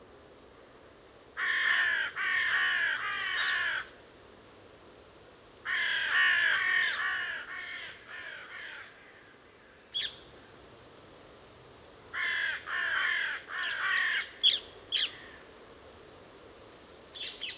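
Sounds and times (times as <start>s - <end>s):
carrion crow Corvus corone cawing: 1.4s - 3.9s, 5.7s - 9.3s, 12.2s - 15.4s.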